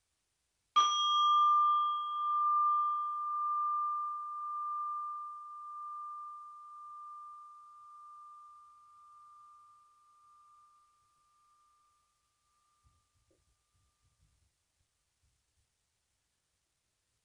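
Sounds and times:
meditation bell struck: 0.8 - 13.2.

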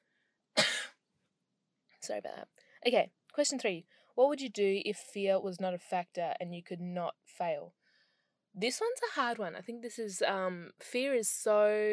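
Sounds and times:
person coughing: 0.6 - 1.0
speech: 2.0 - 7.8, 8.5 - 11.9.

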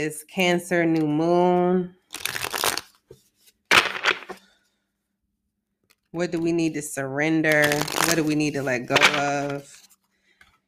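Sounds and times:
speech: 0.0 - 2.2, 6.1 - 9.8
deck of self-care cards being shuffled: 2.2 - 4.4, 7.6 - 10.0.

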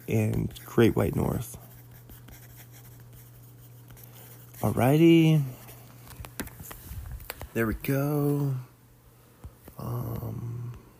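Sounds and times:
pen or pencil writing by hand on paper: 0.0 - 5.0
low electrical hum: 0.0 - 10.9
speech: 0.1 - 1.6, 4.6 - 5.6, 7.6 - 8.7, 9.8 - 10.5.

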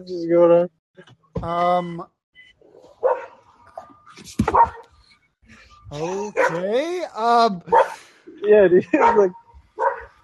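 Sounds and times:
speech: 0.0 - 2.2, 4.2 - 4.9, 5.5 - 9.9
dog being walked barking and yelping: 2.8 - 4.9, 6.3 - 6.7, 7.7 - 8.0, 8.9 - 10.2.

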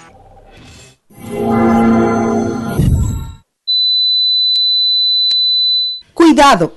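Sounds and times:
simulated tinnitus high-pitched ringing tone: 1.2 - 3.4.

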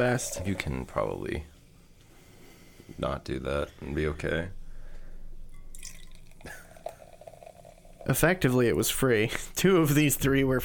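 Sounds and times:
carbonated drink poured and fizzing: 0.0 - 1.0, 5.6 - 8.9
speech: 0.0 - 1.5, 2.9 - 4.6, 8.0 - 10.6.

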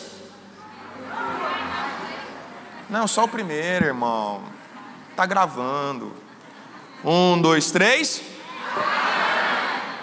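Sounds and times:
crowd of voices shouting all at once: 0.6 - 3.2, 8.4 - 10.0
speech: 2.9 - 4.6, 5.2 - 6.2, 7.0 - 9.0.

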